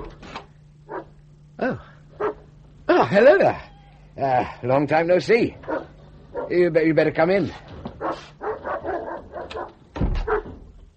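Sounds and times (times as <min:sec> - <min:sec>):
dog barking: 0:00.9 - 0:01.2, 0:02.2 - 0:02.5, 0:05.6 - 0:06.6, 0:08.0 - 0:10.6
speech: 0:03.1 - 0:05.7, 0:06.5 - 0:07.6.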